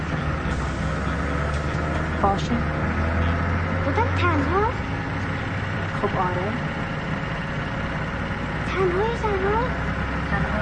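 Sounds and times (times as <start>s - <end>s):
city bus engine rumble and road noise heard from inside: 0.0s - 10.6s
speech: 2.2s - 2.8s, 3.9s - 5.0s, 6.0s - 6.8s, 8.8s - 10.6s.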